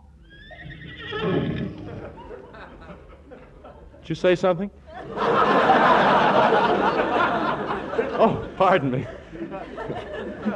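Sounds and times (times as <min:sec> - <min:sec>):
horse neighing on grass: 0:00.3 - 0:02.3
laughter: 0:01.7 - 0:04.1, 0:04.9 - 0:10.5
speech: 0:04.1 - 0:05.4, 0:08.2 - 0:10.5.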